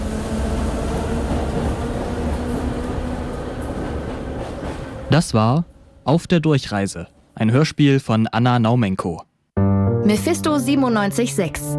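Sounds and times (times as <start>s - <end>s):
train ride sound effect in a radio play: 0.0s - 6.4s
speech: 5.2s - 11.7s.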